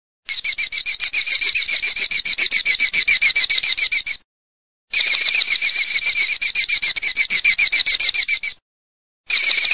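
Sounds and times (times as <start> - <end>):
Eurasian hobby calling: 0.3 - 4.2, 4.9 - 8.6.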